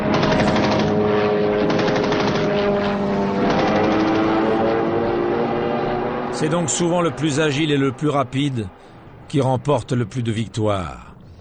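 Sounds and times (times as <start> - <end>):
rapid machine gun fire in an aerial dogfight: 0.0 - 4.8
propeller aircraft engines droning: 0.0 - 11.3
speech: 6.4 - 11.1.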